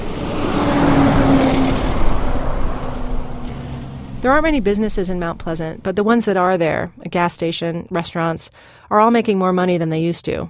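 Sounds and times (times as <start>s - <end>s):
vehicle passing: 0.0s - 7.4s
heavy traffic of large trucks and cars on a busy street: 0.0s - 7.6s
speech: 4.2s - 10.4s.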